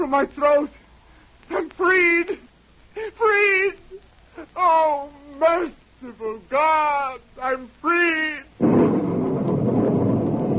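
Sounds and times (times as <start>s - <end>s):
hiss of rain in a breaking storm: 0.0s - 10.5s
speech: 0.1s - 0.8s, 1.5s - 8.8s
low rumbling thunder of a breaking storm: 8.6s - 10.5s.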